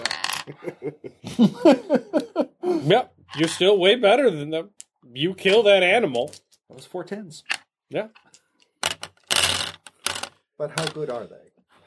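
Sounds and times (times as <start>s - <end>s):
dice clattering across a hard tabletop: 0.0s - 0.5s, 8.2s - 11.1s
laughter: 0.4s - 2.7s
speech: 0.5s - 2.1s, 2.8s - 8.2s, 10.6s - 11.5s.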